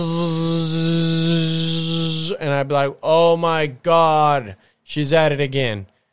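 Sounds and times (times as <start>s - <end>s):
voice imitating an electric sander sanding wooden furniture: 0.0s - 2.6s
speech: 2.3s - 5.9s.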